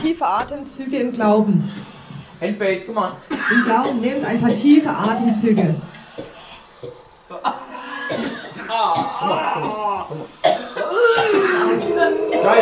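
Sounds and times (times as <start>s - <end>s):
speech: 0.0s - 7.5s, 8.1s - 12.6s
people coughing during a prayer meeting: 3.3s - 12.6s
overlapping voices: 5.5s - 12.6s.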